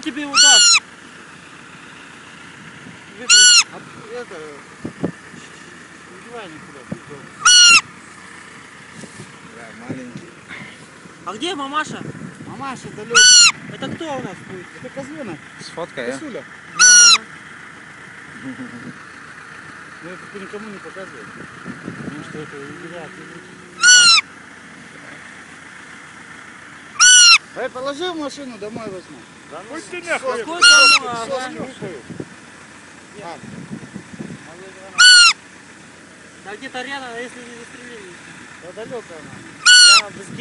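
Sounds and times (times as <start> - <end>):
roe deer fawn calling: 0.2 - 0.9, 3.1 - 3.8, 7.2 - 8.0, 13.0 - 13.7, 16.7 - 17.5, 23.0 - 24.4, 26.8 - 27.6, 30.1 - 31.6, 34.9 - 35.4, 39.5 - 40.2.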